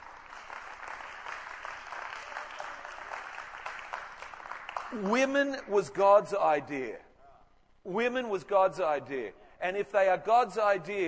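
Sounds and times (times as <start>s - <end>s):
audience clapping: 0.0s - 5.7s
speech: 4.9s - 7.1s, 7.9s - 11.0s.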